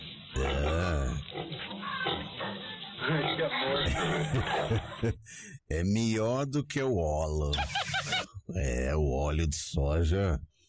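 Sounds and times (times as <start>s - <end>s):
fat castrated pig grunting and snorting: 0.4s - 1.6s
speech: 3.1s - 10.5s
laughter: 3.7s - 5.6s.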